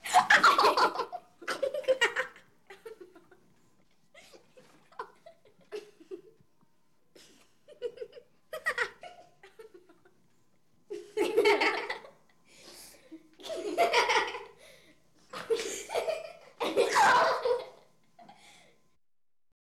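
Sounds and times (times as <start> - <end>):
children giggling: 0.0 - 3.5, 4.2 - 6.4, 7.2 - 10.2, 10.9 - 12.2, 13.4 - 14.6, 15.3 - 17.9.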